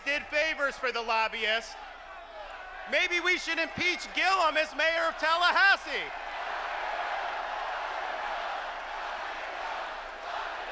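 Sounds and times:
speech: 0:00.2 - 0:01.8, 0:02.9 - 0:06.6
large crowd chanting: 0:06.1 - 0:10.7.

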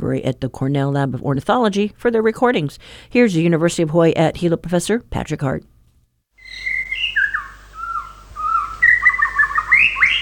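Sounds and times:
speech: 0:00.0 - 0:05.7
white-rumped shama singing: 0:06.4 - 0:10.2.

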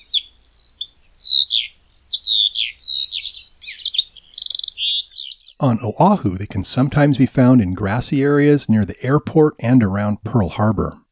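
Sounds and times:
Eurasian skylark singing trills, warbles and whistles: 0:00.0 - 0:05.7
speech: 0:00.8 - 0:02.4, 0:05.6 - 0:11.0.

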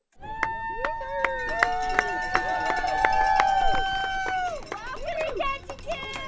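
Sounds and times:
spectators cheering and whooping outdoors at a boat harbor in southeast Alaska: 0:00.2 - 0:06.2.

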